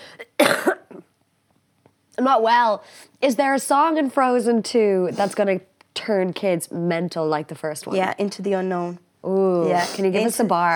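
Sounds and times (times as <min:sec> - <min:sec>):
person coughing harshly: 0:00.0 - 0:01.1
speech: 0:02.2 - 0:10.7.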